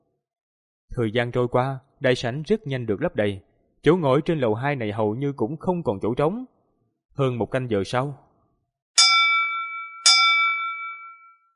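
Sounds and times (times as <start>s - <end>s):
speech: 1.0s - 6.6s, 7.2s - 8.3s
bell strikes in a great hall before an auction: 9.0s - 11.5s.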